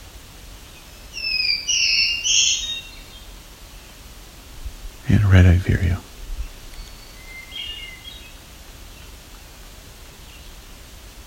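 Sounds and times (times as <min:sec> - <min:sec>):
faint warblers singing: 0:00.6 - 0:04.1, 0:05.1 - 0:09.2
hermit thrush singing fluty phrases: 0:00.8 - 0:03.3, 0:05.2 - 0:08.4
speech: 0:05.1 - 0:06.1.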